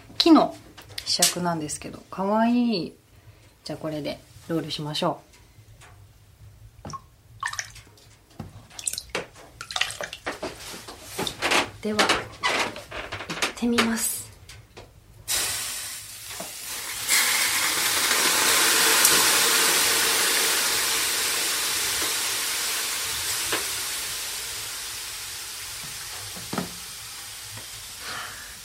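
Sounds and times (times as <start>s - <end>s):
speech: 0.2s - 3.0s, 3.6s - 5.3s, 11.8s - 12.2s, 13.6s - 14.2s
small splashes: 6.8s - 8.0s, 8.7s - 10.4s
sauna stove steam hissing: 15.2s - 28.6s
water poured from a bucket onto hot sauna stones: 15.3s - 26.1s.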